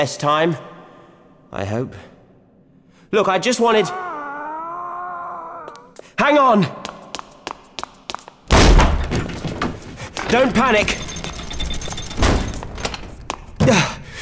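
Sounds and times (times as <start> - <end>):
man speaking excitedly: 0.0 - 0.7, 1.5 - 2.1, 3.1 - 4.8, 5.4 - 6.8, 10.2 - 11.0
speech: 0.0 - 0.7, 1.5 - 2.1, 3.1 - 4.0, 6.3 - 6.8, 10.3 - 11.1, 13.6 - 14.0
heavy self-locking door slamming shut: 8.5 - 14.2
light rattling and knocking: 8.5 - 14.2.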